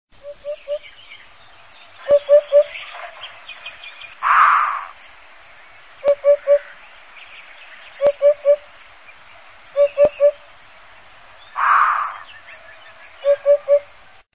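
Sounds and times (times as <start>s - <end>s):
hoopoe song: 0.2s - 5.0s, 6.0s - 6.8s, 7.7s - 10.6s, 11.4s - 14.0s.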